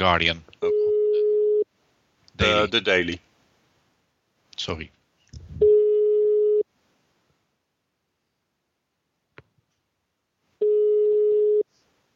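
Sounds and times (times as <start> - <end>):
speech: 0.0 - 0.8, 2.4 - 3.3, 4.6 - 5.0
telephone ringback tone while placing a live call: 0.7 - 1.6, 5.6 - 6.6, 10.6 - 11.6.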